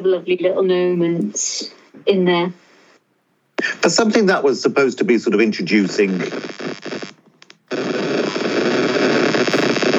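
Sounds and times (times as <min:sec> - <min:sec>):
speech: 0:00.0 - 0:02.6, 0:03.8 - 0:06.7
electrical interference static crackling and buzzing: 0:03.6 - 0:09.9.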